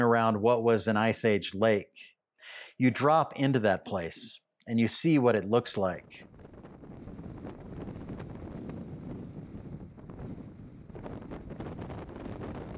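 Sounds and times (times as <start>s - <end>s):
speech: 0.0s - 6.5s
strong wind blowing over a dry lake bed: 5.9s - 12.7s.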